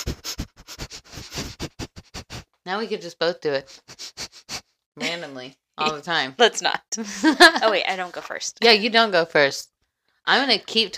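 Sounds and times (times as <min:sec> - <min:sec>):
sniffing close to the microphone: 0:00.0 - 0:02.6, 0:03.6 - 0:04.7
speech: 0:02.6 - 0:03.9, 0:05.0 - 0:09.7, 0:10.3 - 0:10.9.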